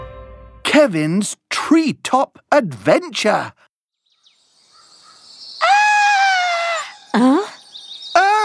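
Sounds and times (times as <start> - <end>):
speech: 0.7 - 3.7, 7.1 - 7.5
person screaming: 5.6 - 7.5, 8.2 - 8.4.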